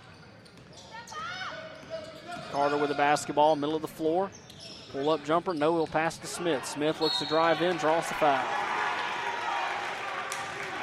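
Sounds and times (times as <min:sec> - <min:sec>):
speech: 0:02.5 - 0:08.7
large indoor basketball arena crowd cheering: 0:06.6 - 0:10.8.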